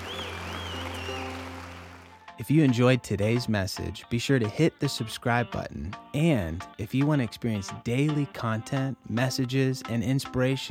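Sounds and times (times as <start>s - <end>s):
faint wavering high whistle: 0.0s - 1.6s
congregation applause: 0.0s - 2.2s
speech: 2.4s - 10.6s.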